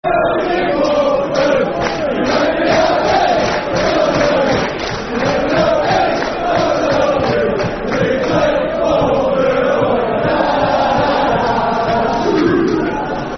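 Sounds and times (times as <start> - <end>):
football crowd chanting a soccer song: 0.0 - 13.3.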